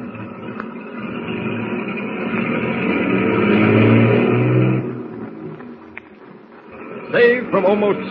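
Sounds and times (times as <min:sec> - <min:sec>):
heavy engines of a motorcade of tank trucks rumbling and revving: 0:00.0 - 0:08.0
speech: 0:07.6 - 0:08.0.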